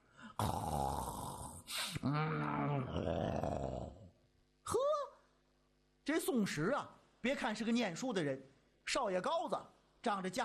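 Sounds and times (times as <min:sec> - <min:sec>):
voice imitating snoring of a sleeping old Taoist priest: 0:00.4 - 0:04.1
speech: 0:06.1 - 0:10.4.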